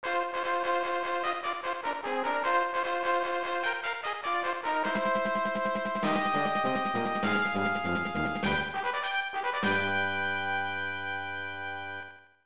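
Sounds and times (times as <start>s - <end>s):
fanfare: 0.0s - 12.1s.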